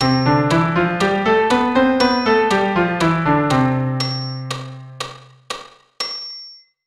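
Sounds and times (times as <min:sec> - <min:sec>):
keyboard playing a C major scale: 0:00.0 - 0:05.0.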